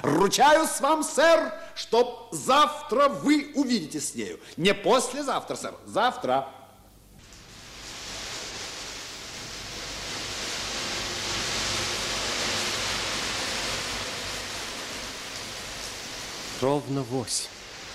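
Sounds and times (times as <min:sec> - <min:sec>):
speech: 0:00.0 - 0:06.6, 0:16.6 - 0:17.6
heavy rain falling: 0:07.2 - 0:17.9.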